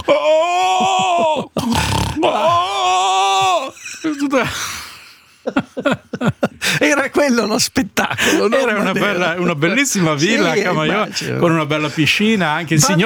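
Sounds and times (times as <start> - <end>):
laughter: 0.0 - 13.0
voice imitating elderly woman snoring and groaning: 1.5 - 2.6
speech: 4.3 - 4.8, 5.4 - 13.0.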